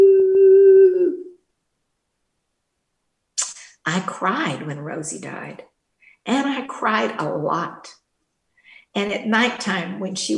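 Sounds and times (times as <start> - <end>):
person imitating a springer spaniel howling: 0.0 - 1.4
speech: 3.9 - 8.0, 8.9 - 10.3.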